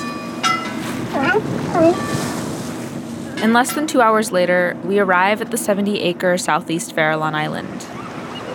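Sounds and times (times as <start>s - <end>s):
ocean water: 0.0s - 3.8s, 6.0s - 8.5s
wind on open ocean: 0.0s - 8.5s
boat engine drone on open ocean: 1.0s - 8.5s
wavering animal cries: 1.1s - 2.0s
speech: 1.2s - 2.2s, 3.4s - 8.0s.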